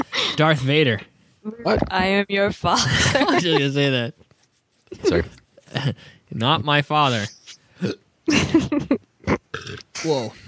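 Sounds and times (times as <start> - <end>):
speech: 0.4 - 4.2, 4.9 - 9.0, 9.6 - 10.4
person burping into a microphone: 7.8 - 8.0, 9.2 - 10.0.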